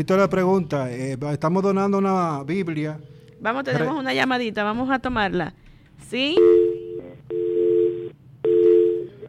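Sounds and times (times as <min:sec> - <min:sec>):
speech: 0:00.0 - 0:06.6
low hum: 0:00.0 - 0:09.2
telephone busy tone after a dropped call: 0:06.4 - 0:09.2.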